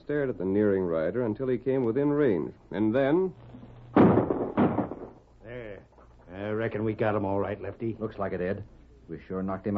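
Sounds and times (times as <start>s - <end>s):
speech: 0.1s - 3.7s, 5.5s - 9.7s
rifle gunshots in a Western radio drama: 4.0s - 5.2s.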